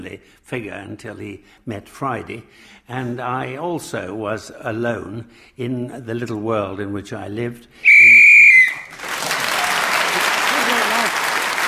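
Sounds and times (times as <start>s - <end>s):
speech: 0.1s - 8.1s
piercing whistle blast marking time up: 7.8s - 8.9s
sustained applause from an audience: 8.6s - 11.6s.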